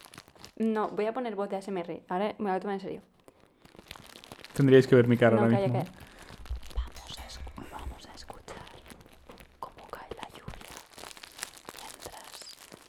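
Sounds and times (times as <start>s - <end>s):
paper or plastic crinkling like unwrapping: 0.0s - 0.6s, 3.2s - 12.8s
speech: 0.6s - 3.1s, 4.6s - 6.0s
faint ASMR-style whispering: 6.5s - 10.7s, 11.7s - 12.6s.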